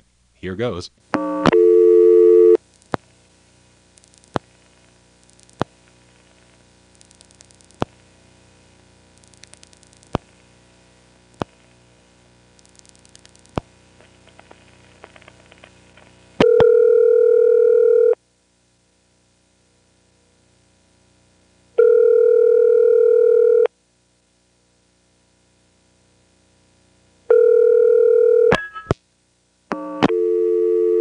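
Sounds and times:
low steady hum: 0.0 - 31.0
speech: 0.4 - 1.7
buzzy telephone tone in on-off bursts: 1.2 - 2.6, 16.4 - 18.2, 21.8 - 23.7, 27.3 - 28.9, 29.7 - 31.0.

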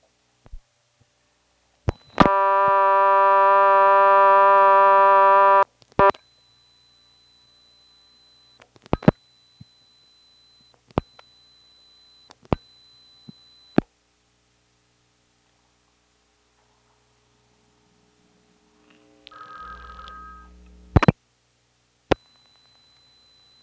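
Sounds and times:
steady buzzy telephone dial tone on a party line: 1.9 - 13.8, 19.3 - 21.1, 22.1 - 23.6
faint high whine: 1.9 - 13.9, 16.2 - 21.2, 22.0 - 23.6.

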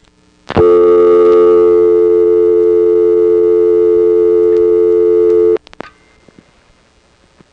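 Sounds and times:
telephone exchange dial tone: 0.6 - 5.6.

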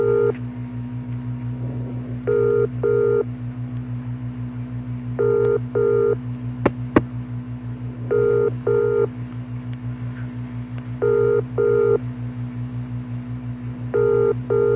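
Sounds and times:
British double-burst telephone ringback tone: 0.0 - 0.3, 2.3 - 3.2, 5.2 - 6.2, 8.1 - 9.1, 11.0 - 12.0, 14.0 - 14.7
steady low phone line hum: 0.0 - 14.7.

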